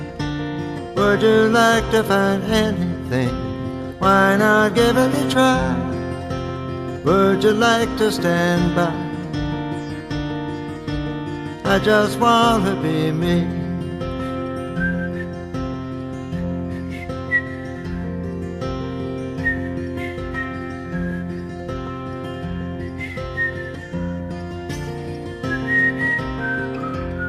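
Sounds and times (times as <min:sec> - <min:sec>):
steady instrumental backing music: 0:00.0 - 0:27.2
speech: 0:01.0 - 0:05.9, 0:07.0 - 0:09.0, 0:11.7 - 0:13.6
person whistling a melody: 0:14.0 - 0:15.6, 0:16.2 - 0:18.0, 0:19.3 - 0:21.6, 0:22.5 - 0:27.2.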